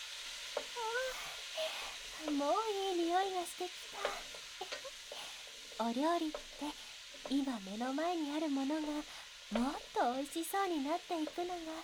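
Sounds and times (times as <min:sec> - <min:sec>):
vegetables sizzling while being stir-fried in a pan: 0:00.0 - 0:11.8
speech: 0:02.2 - 0:04.8, 0:05.8 - 0:11.8.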